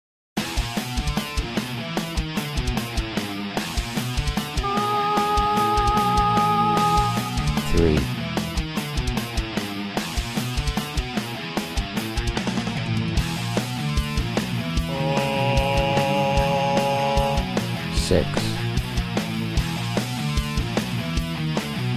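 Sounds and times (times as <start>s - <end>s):
heavy metal music in the key of E: 0.4s - 21.9s.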